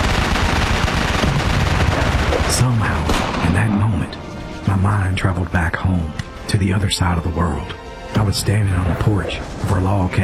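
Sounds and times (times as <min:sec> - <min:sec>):
wartime machine-gun fire from gun nests: 0:00.0 - 0:03.5
speech: 0:02.6 - 0:10.2.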